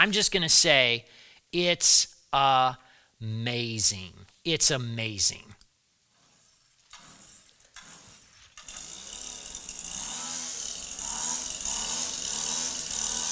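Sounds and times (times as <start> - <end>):
speech: 0.0 - 5.6
battery-powered weed whacker running: 7.8 - 13.3.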